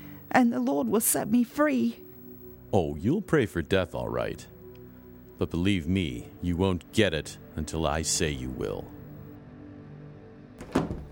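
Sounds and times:
speech: 0.4 - 2.0, 2.7 - 4.5, 5.4 - 9.0
door opening with a dull hollow thunk: 10.6 - 11.1.

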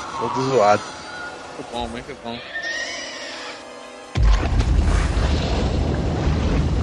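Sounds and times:
speech: 0.2 - 0.9, 1.6 - 2.7
grenade launcher explosion in a video game: 4.2 - 6.8.

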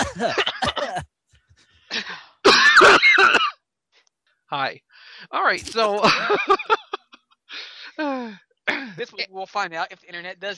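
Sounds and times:
laughter: 0.0 - 1.0, 5.7 - 8.0
person giving an exaggerated theatrical cough: 0.0 - 1.0, 1.9 - 3.5, 5.8 - 7.0, 8.7 - 9.0
speech: 0.2 - 0.5, 4.5 - 4.8, 5.4 - 6.7, 9.1 - 10.5.

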